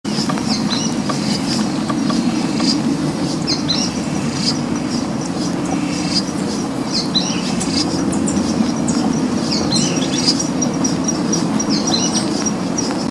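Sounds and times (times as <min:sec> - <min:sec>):
Synallaxis frontalis sooty-fronted spinetail calling: 0:00.1 - 0:13.0.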